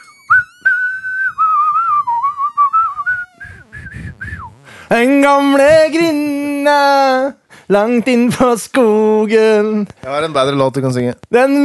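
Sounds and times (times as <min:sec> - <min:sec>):
person whistling a short melody: 0:00.0 - 0:04.6
speech: 0:04.9 - 0:11.6.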